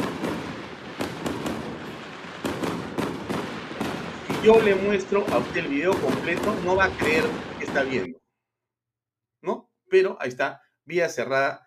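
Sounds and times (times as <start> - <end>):
fireworks bursting with crackling and rumble: 0.0 - 8.2
speech: 4.4 - 8.2, 9.4 - 11.6.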